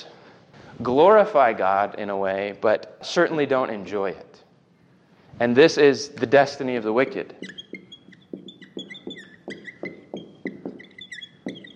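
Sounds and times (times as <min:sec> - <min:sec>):
speech: 0:00.8 - 0:04.3, 0:05.4 - 0:07.6
marker squeaking across a whiteboard: 0:07.0 - 0:11.7.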